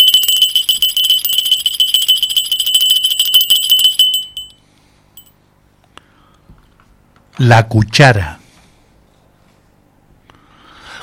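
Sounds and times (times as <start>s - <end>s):
small hand bell ringing: 0.0s - 4.6s, 5.2s - 5.4s
speech: 7.4s - 8.4s.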